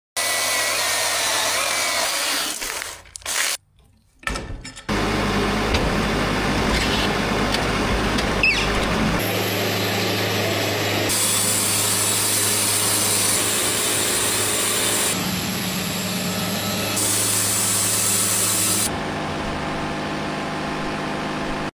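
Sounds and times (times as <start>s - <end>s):
sawmill: 0.2s - 3.6s, 4.8s - 21.7s.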